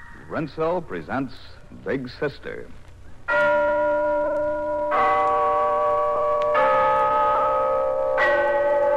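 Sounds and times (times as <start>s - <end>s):
speech: 0.4s - 2.8s
town hall clock bell chiming: 3.3s - 8.9s.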